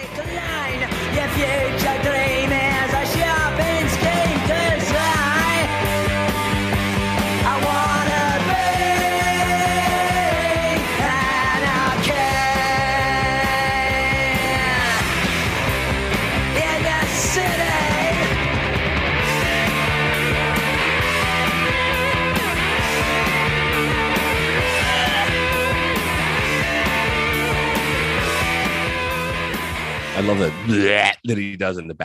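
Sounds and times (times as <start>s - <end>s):
punk rock song with guitars, drums and melodic vocals: 0.0s - 31.4s
speech: 30.3s - 32.0s.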